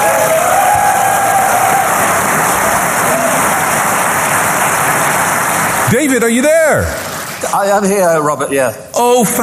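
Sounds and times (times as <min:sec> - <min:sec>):
faint cheers: 0:00.0 - 0:03.9
large audience applauding: 0:00.0 - 0:07.6
speech: 0:05.9 - 0:09.4.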